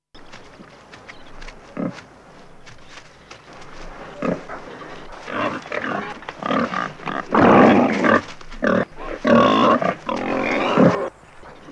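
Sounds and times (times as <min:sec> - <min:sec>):
wild boar squealing grunts: 0:04.0 - 0:11.7.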